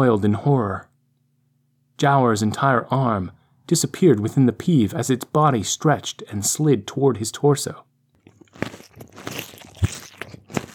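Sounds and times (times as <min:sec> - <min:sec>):
speech: 0:00.0 - 0:00.9, 0:02.0 - 0:07.9
crunching: 0:08.2 - 0:10.7.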